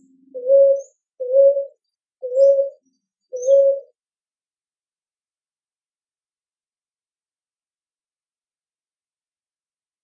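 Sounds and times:
ruddy ground dove cooing: 0:00.0 - 0:02.8, 0:03.4 - 0:03.9.

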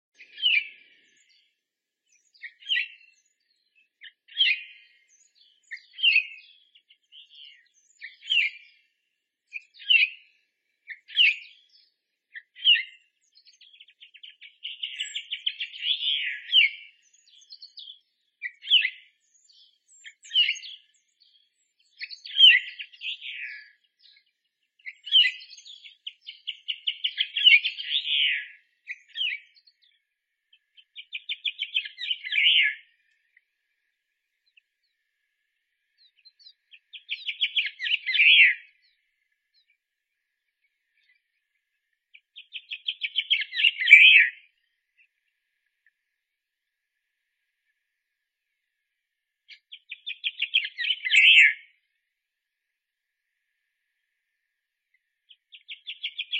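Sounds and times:
Gran Canaria blue chaffinch singing: 0:00.2 - 0:46.0, 0:49.5 - 0:52.0, 0:54.9 - 0:56.3.

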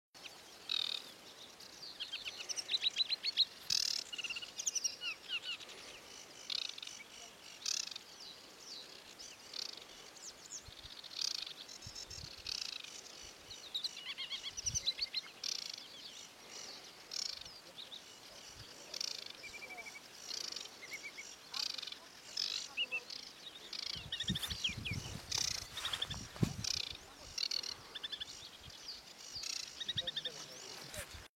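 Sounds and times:
aquatic warbler singing: 0:00.2 - 0:31.3.

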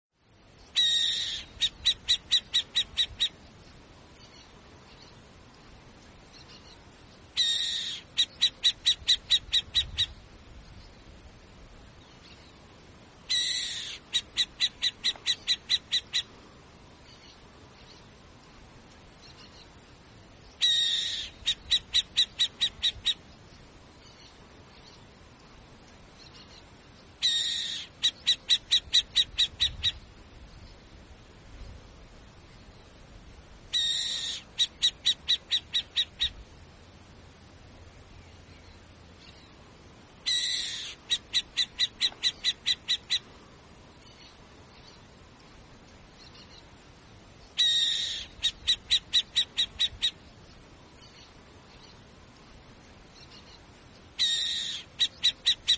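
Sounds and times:
burrowing owl calling: 0:00.7 - 0:03.4, 0:07.4 - 0:10.2, 0:13.3 - 0:16.4, 0:20.6 - 0:23.2, 0:27.2 - 0:30.1, 0:33.7 - 0:36.5, 0:40.2 - 0:43.4, 0:47.5 - 0:50.3, 0:53.2 - 0:55.7.

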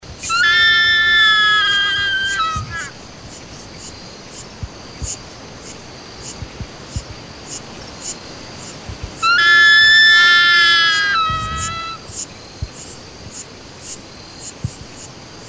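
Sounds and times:
insects ticking: 0:00.0 - 0:15.4
Chaco eagle calling with long piercing harmonic whistles: 0:00.2 - 0:03.0, 0:09.2 - 0:12.0.

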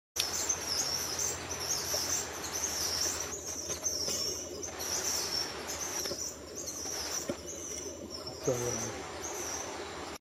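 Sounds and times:
barbudo pardo singing: 0:00.2 - 0:10.1.

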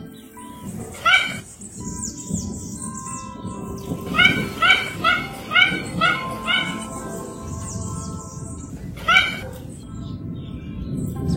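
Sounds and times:
faint high twittering: 0:00.0 - 0:11.3
Mandarin duck harmonic calls: 0:04.0 - 0:07.4, 0:08.9 - 0:09.6.

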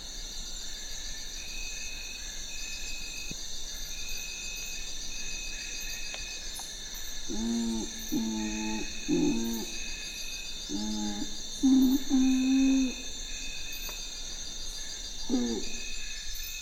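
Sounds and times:
steady high-pitched insect drone: 0:07.0 - 0:16.6
Nocturnal curassow song: 0:07.3 - 0:13.4, 0:15.2 - 0:16.0.

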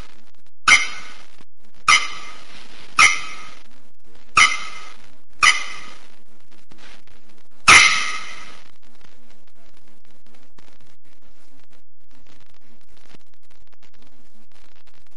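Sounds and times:
northeastern Brazilian bearded bellbird song clangs: 0:00.7 - 0:01.2, 0:01.9 - 0:02.4, 0:03.0 - 0:03.6, 0:04.4 - 0:06.0.

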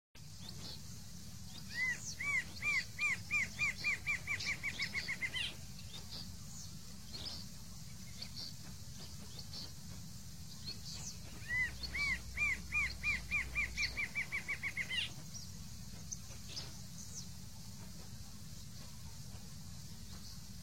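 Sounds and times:
red-winged choca song: 0:00.2 - 0:20.6.

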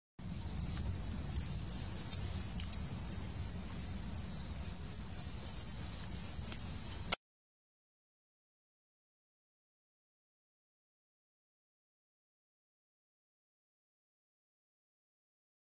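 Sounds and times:
person singing: 0:00.2 - 0:07.2.

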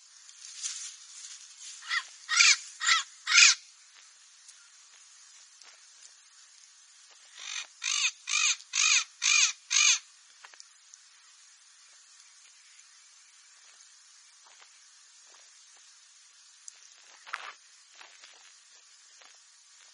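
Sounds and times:
parrot giving harsh raspy squawks: 0:01.8 - 0:03.6, 0:07.4 - 0:10.0.

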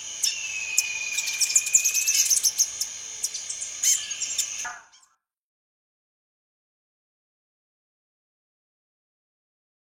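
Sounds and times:
rufous-headed tanager singing: 0:00.0 - 0:04.7.

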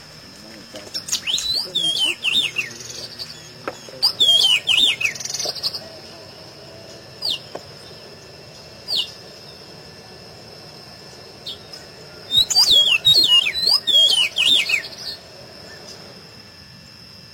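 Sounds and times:
pedro-ceroulo song of thin notes and lively twisting whistles: 0:00.9 - 0:05.9, 0:07.2 - 0:09.7, 0:11.4 - 0:16.1.

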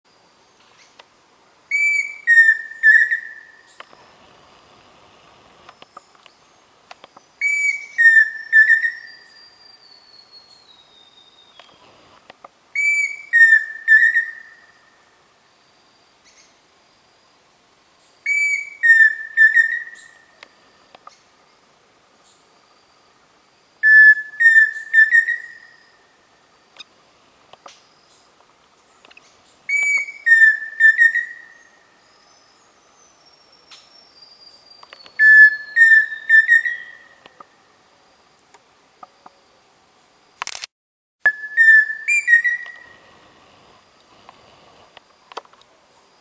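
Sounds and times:
saci-pheasant calling: 0:01.7 - 0:03.9, 0:07.4 - 0:11.9, 0:12.8 - 0:14.9, 0:18.3 - 0:20.4, 0:23.8 - 0:26.1, 0:29.1 - 0:31.8, 0:34.8 - 0:37.6, 0:41.3 - 0:43.0.

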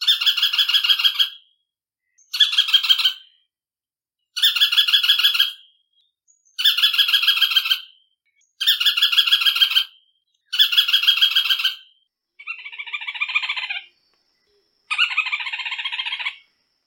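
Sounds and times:
white-eyed foliage-gleaner giving grating chattering notes: 0:00.0 - 0:01.4, 0:02.2 - 0:03.4, 0:04.4 - 0:05.7, 0:06.6 - 0:08.0, 0:08.6 - 0:14.0, 0:14.9 - 0:16.5.

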